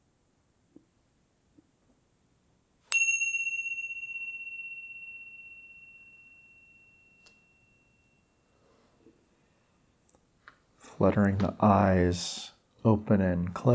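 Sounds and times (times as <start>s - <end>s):
meditation bell ringing: 2.9s - 8.7s
speech: 11.0s - 13.7s.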